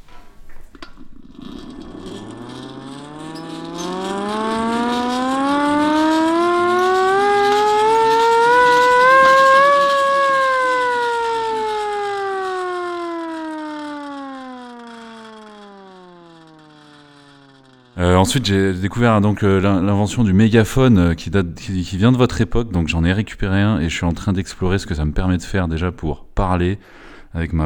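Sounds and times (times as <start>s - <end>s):
small hand-cranked siren rising and falling: 0.8s - 19.9s
speech: 18.3s - 27.6s.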